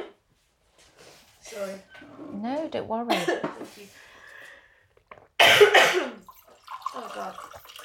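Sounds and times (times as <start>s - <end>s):
speech: 1.6s - 4.1s, 7.0s - 7.6s
loud harsh coughs: 3.1s - 3.6s, 5.4s - 6.2s.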